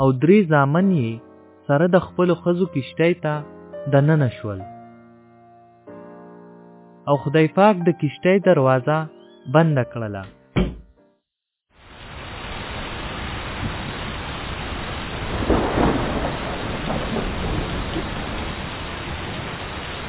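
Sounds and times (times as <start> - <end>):
speech: 0.0 - 4.7, 7.1 - 10.4
heavy rain downpour: 11.8 - 20.0
thunder rumbling: 12.0 - 20.0.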